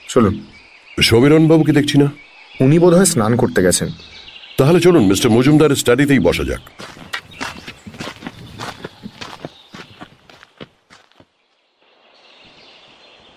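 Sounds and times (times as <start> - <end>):
speech: 0.1 - 7.0
footsteps of four people walking through a house: 6.7 - 11.6.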